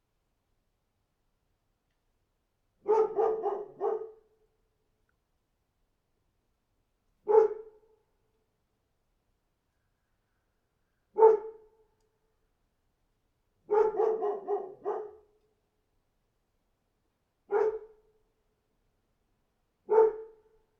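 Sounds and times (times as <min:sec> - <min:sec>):
dog barking: 0:02.8 - 0:04.3, 0:07.3 - 0:07.8, 0:11.2 - 0:11.7, 0:13.7 - 0:15.3, 0:17.5 - 0:18.0, 0:19.9 - 0:20.5.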